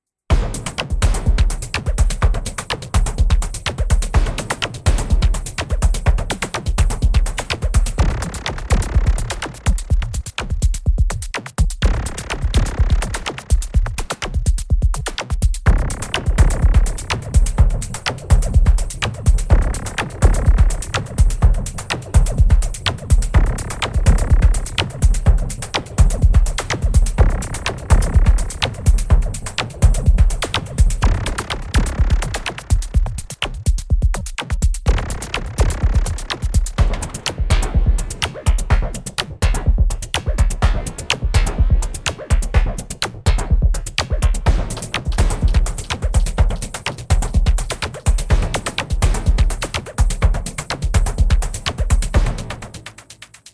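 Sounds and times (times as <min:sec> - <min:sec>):
old-school electro breaks: 0:00.3 - 0:53.5.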